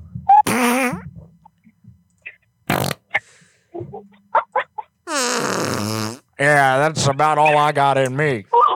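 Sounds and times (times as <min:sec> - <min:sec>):
farting: 0:00.4 - 0:01.1, 0:02.7 - 0:03.2, 0:05.1 - 0:06.4
speech: 0:06.4 - 0:08.6.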